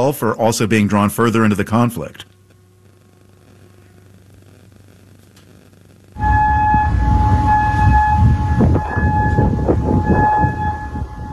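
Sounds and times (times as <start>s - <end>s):
speech: 0.0s - 2.3s
air raid siren wailing outdoors: 6.2s - 11.3s
heavy low rumble of wind or noise: 6.2s - 11.3s.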